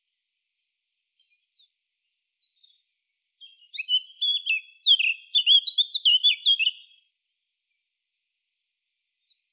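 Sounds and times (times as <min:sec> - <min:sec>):
Eurasian blackcap Sylvia atricapilla singing scratchy and fluty warbled notes: 0:03.4 - 0:07.0.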